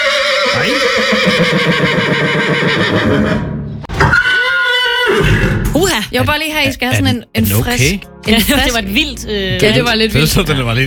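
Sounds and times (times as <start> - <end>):
horse whinnying: 0.0 - 5.7
speech: 6.2 - 10.8.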